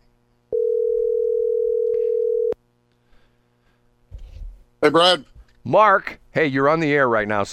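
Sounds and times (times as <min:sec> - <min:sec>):
telephone ringback tone over the line: 0:00.5 - 0:02.6
speech: 0:04.8 - 0:07.5.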